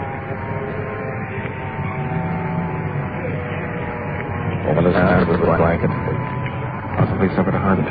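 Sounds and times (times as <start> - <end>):
faint tonal hum: 0.0 - 7.9
police car engine droning: 0.0 - 7.9
road noise: 0.0 - 7.9
speech: 4.7 - 6.1, 7.0 - 7.9.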